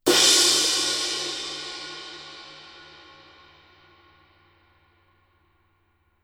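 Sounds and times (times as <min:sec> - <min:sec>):
20 inch thin edge cymbal: 0:00.0 - 0:04.8.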